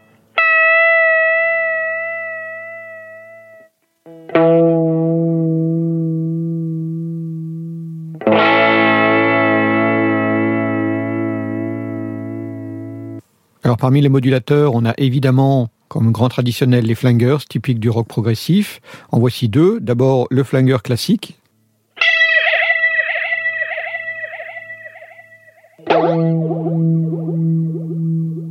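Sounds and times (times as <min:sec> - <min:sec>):
electric guitar played through an analog chorus pedal: 0:00.0 - 0:13.2, 0:22.0 - 0:28.4
speech: 0:13.8 - 0:21.4.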